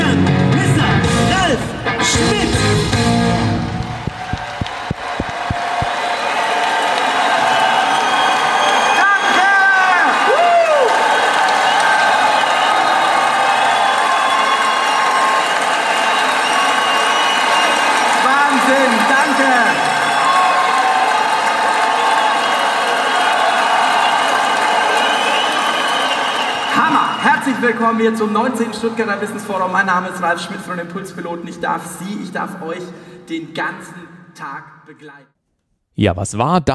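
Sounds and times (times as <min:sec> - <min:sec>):
large audience cheering: 0:00.3 - 0:27.9
large audience applauding: 0:03.3 - 0:27.2
speech: 0:28.0 - 0:35.4, 0:36.0 - 0:36.7.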